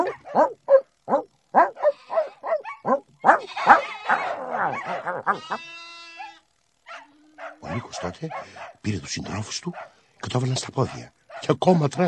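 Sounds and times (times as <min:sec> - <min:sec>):
speech: 0:00.0 - 0:01.2, 0:08.2 - 0:12.0
dog whining: 0:00.0 - 0:07.8
dogs barking: 0:00.0 - 0:12.0.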